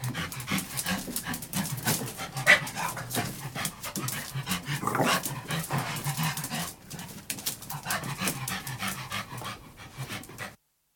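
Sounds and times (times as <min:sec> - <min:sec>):
King Charles Spaniel panting indoors: 0:00.0 - 0:10.6.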